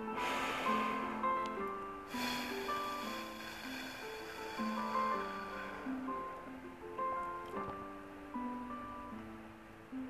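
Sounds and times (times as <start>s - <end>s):
short inhale through the nose: 0.0s - 6.4s
long slow hissing exhale through pursed lips: 0.0s - 6.5s
soft sustained music: 0.0s - 10.0s.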